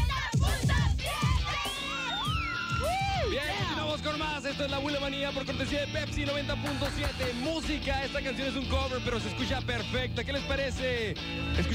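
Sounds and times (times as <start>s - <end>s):
girls shouting loudly from a car: 0.0s - 3.7s
speech: 4.0s - 11.7s.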